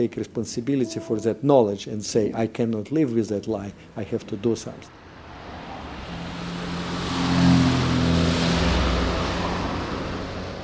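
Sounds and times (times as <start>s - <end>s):
speech: 0.0s - 5.0s
busy street traffic in Moscow: 4.8s - 10.6s.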